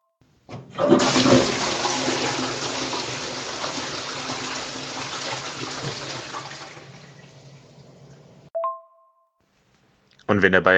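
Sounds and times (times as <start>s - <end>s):
toilet flushing: 0.5s - 8.5s
speech: 10.4s - 10.7s.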